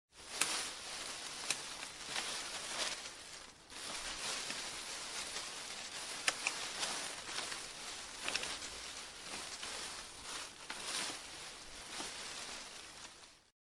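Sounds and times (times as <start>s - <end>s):
rustling: 0.1s - 13.5s.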